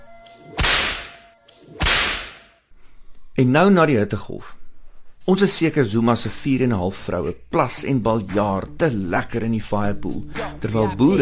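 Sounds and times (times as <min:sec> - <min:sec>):
whip cracks: 0:00.5 - 0:02.6
speech: 0:03.4 - 0:04.6, 0:05.3 - 0:11.2.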